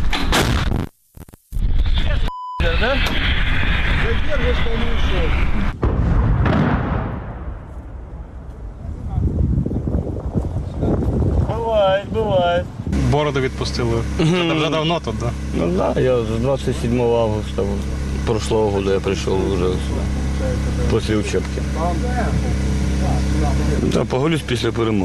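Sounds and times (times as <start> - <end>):
wind noise: 1.7 - 13.1
artillery gun firing a shot: 2.7 - 8.9
speech: 4.1 - 5.8, 12.6 - 25.0.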